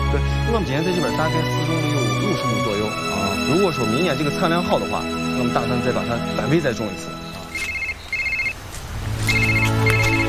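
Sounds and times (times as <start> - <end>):
speech: 0.1 - 7.7
phone ringtone for an incoming call, electronic trill: 7.6 - 8.6, 9.3 - 10.1.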